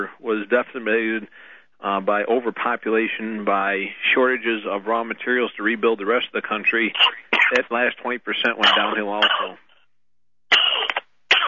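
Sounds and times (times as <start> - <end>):
speech: 0.0 - 9.6
loud explosive sneezes: 7.0 - 7.6, 8.6 - 9.6, 10.5 - 11.4.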